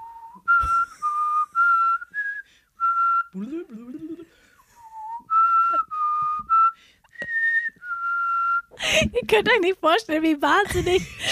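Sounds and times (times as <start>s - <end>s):
person whistling a TV show theme tune: 0.0s - 8.8s
speech: 3.4s - 4.0s, 9.0s - 11.2s
voice murmuring: 3.4s - 4.3s.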